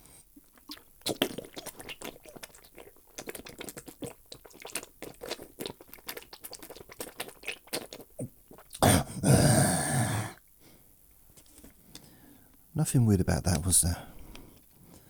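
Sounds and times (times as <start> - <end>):
person sipping and gulping water: 0.6 - 10.4
speech: 12.8 - 14.1.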